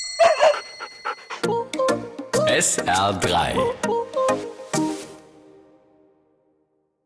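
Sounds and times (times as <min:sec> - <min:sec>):
dog yelping and whining: 0:00.1 - 0:01.4
speech: 0:02.5 - 0:04.4.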